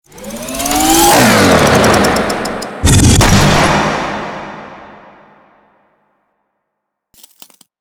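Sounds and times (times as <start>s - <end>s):
engine throttle: 0.0s - 5.5s.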